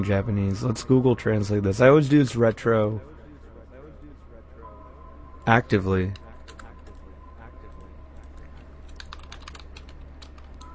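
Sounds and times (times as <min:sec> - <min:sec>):
speech: 0:00.0 - 0:03.1, 0:05.5 - 0:06.2
steady low hum: 0:00.0 - 0:10.7
typing on a computer keyboard: 0:08.2 - 0:10.7.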